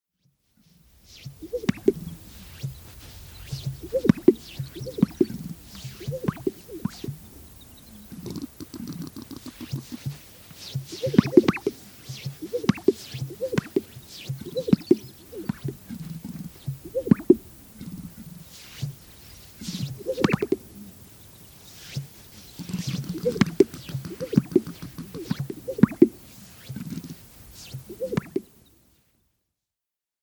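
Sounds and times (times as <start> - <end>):
Greater Sage Grouse: 0.6 - 28.7.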